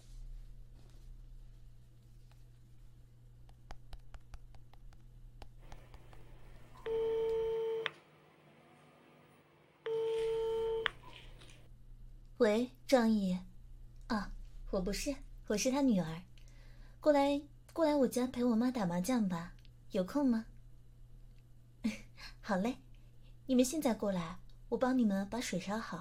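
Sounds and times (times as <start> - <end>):
faint taps and clicks: 3.4 - 6.3
mobile phone ringback tone: 6.8 - 7.9, 9.8 - 11.1
speech: 12.4 - 13.5, 14.1 - 16.3, 17.0 - 20.5, 21.8 - 22.8, 23.5 - 25.9.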